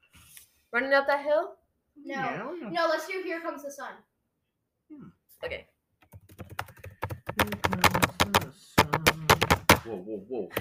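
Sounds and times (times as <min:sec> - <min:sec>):
speech: 0:00.7 - 0:04.1, 0:04.9 - 0:05.7, 0:08.9 - 0:10.5
loud rapid typing on a keyboard: 0:06.0 - 0:09.8.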